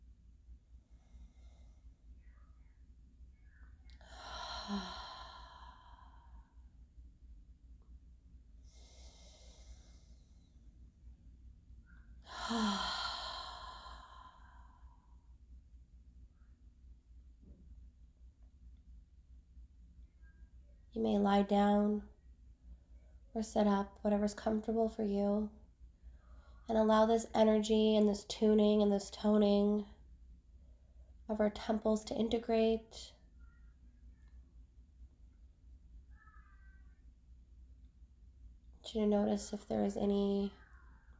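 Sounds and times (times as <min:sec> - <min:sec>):
slow deep breathing in through nose and out through mouth: 0:03.9 - 0:06.7, 0:08.6 - 0:10.8, 0:12.2 - 0:15.4
speech: 0:04.7 - 0:05.0, 0:21.0 - 0:22.1, 0:23.4 - 0:25.6, 0:26.7 - 0:29.9, 0:31.3 - 0:33.2, 0:38.9 - 0:40.6.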